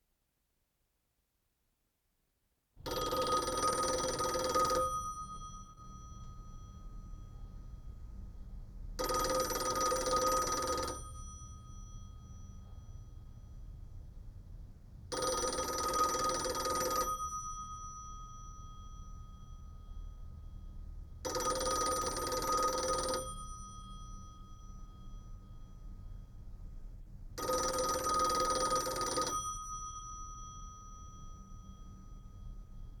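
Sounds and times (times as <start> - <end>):
phone ringing: 2.9 - 5.8, 9.0 - 11.4, 15.1 - 17.6, 21.2 - 24.7, 27.4 - 32.2.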